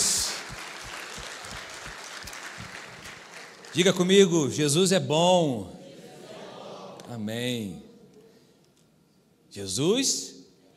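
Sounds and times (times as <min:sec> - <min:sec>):
congregation applauding during a Methodist cathedral church service: 0:00.0 - 0:04.6
speech: 0:03.7 - 0:05.8, 0:07.1 - 0:07.9, 0:09.5 - 0:10.4.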